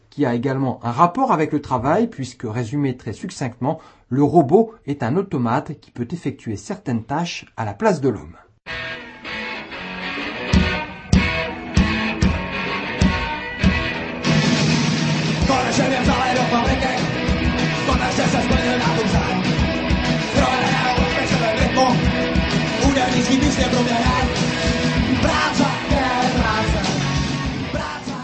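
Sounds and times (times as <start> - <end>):
speech: 0.2 - 8.4
distorted guitars: 8.7 - 28.2
loud punk rock song with shouted chorus: 8.7 - 28.2
pounding drums: 10.6 - 25.9.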